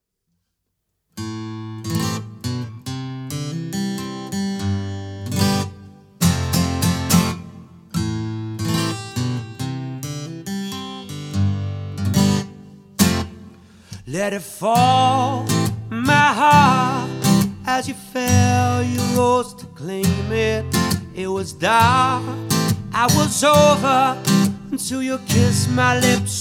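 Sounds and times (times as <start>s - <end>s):
guitar played by the singer: 1.2s - 26.3s
solo singer singing: 14.0s - 26.3s.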